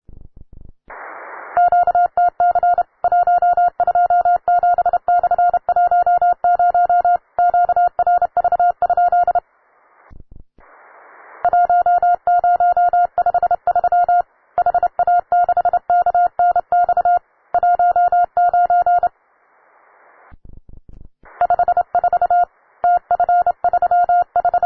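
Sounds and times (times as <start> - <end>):
CW sent by a beginner: 1.6 - 9.4, 11.4 - 19.1, 21.4 - 24.6.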